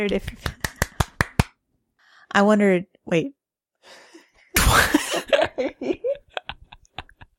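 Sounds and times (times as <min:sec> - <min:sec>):
speech: 0:00.0 - 0:00.6, 0:02.4 - 0:04.0, 0:04.6 - 0:06.2
sharp hand claps used as an editing marker: 0:00.0 - 0:01.6
laughter: 0:04.7 - 0:07.3.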